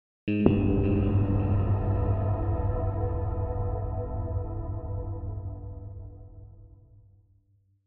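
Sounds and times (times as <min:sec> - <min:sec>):
mysterious guitar hit with tunnel tail: 0:00.3 - 0:06.3.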